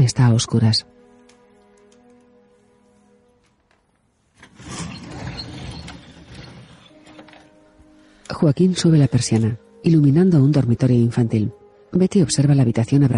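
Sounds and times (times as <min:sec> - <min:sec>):
soft sustained music: 0:00.0 - 0:13.1
speech: 0:00.1 - 0:01.0, 0:08.4 - 0:13.1
bedroom door in a house creaking open: 0:04.4 - 0:07.7.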